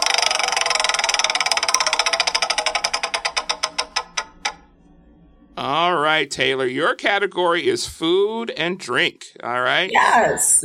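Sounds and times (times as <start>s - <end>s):
game show wheel clicking as its pointer strikes the pegs: 0.0s - 4.6s
speech: 5.6s - 10.6s.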